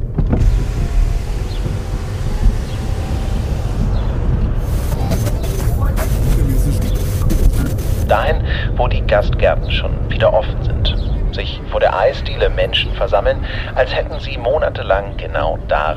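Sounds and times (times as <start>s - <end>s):
car rumble during a drive through the countryside: 0.0s - 15.9s
road noise: 0.0s - 15.9s
speech: 8.8s - 15.9s.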